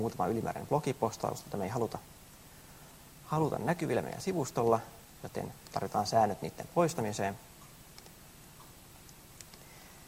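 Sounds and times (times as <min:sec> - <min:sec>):
speech: 0:00.0 - 0:02.2, 0:03.3 - 0:07.5
faint sharp computer mouse clicks: 0:07.9 - 0:08.2, 0:09.0 - 0:09.7.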